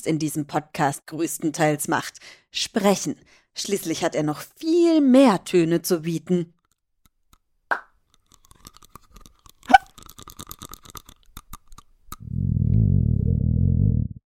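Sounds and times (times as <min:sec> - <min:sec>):
speech: 0:00.0 - 0:06.6
human body small crackles and clicks: 0:08.0 - 0:12.2
human hiccup-like gulp: 0:09.7 - 0:10.0
loud low human body rumbling: 0:12.2 - 0:14.2.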